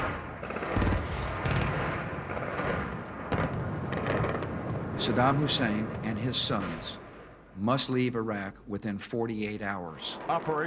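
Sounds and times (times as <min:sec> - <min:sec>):
gunfire in Baghdad during wartime: 0:00.0 - 0:07.1
dense steady wash of noise: 0:00.0 - 0:10.6
speech: 0:05.0 - 0:07.0, 0:07.6 - 0:10.6.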